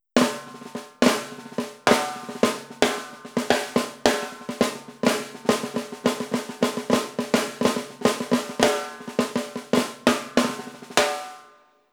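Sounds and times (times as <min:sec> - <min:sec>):
Gretsch 14-inch Crystal Tone metal snare drum: 0:00.0 - 0:11.6.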